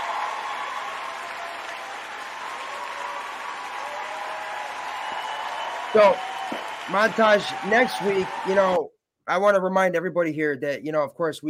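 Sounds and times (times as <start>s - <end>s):
sustained applause from a crowd: 0.0s - 8.8s
speech: 5.9s - 11.4s.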